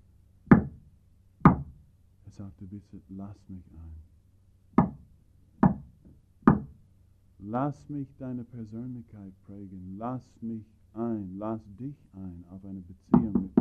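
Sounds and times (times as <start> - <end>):
low hum: 0.0 - 13.5
knocking on a wooden door: 0.5 - 0.8, 1.4 - 1.8, 4.8 - 5.0, 5.6 - 5.9, 6.5 - 6.7, 13.1 - 13.5
speech: 2.4 - 4.2, 7.4 - 13.5.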